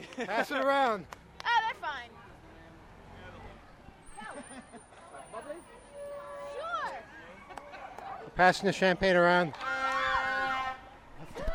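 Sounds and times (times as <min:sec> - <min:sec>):
busy outdoor background: 0:00.0 - 0:11.5
speech: 0:00.2 - 0:01.2, 0:08.4 - 0:09.7
bus horn honking: 0:05.8 - 0:06.9, 0:09.6 - 0:10.9.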